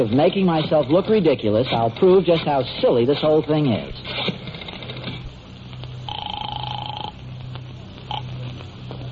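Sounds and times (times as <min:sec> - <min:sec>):
speech: 0:00.0 - 0:04.5
steady electronic phone ring: 0:06.1 - 0:07.2, 0:08.1 - 0:08.3.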